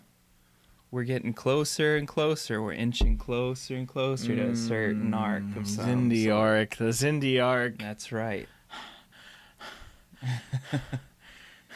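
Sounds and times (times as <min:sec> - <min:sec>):
speech: 0:00.9 - 0:08.9, 0:10.2 - 0:11.1
heavy excited breathing with short voiced pants: 0:08.5 - 0:11.7.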